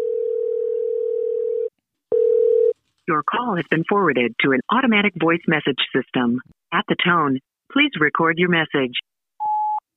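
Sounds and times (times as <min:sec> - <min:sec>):
telephone ringback tone while an outgoing call is placed: 0:00.0 - 0:02.7
speech: 0:03.1 - 0:09.1.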